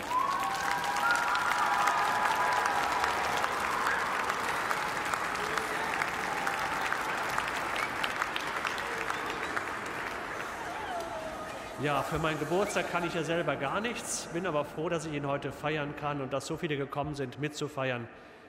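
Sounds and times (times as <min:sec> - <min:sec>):
faint cheering or voices: 0:00.0 - 0:12.6
audience applause: 0:00.0 - 0:13.9
speech: 0:11.8 - 0:18.3.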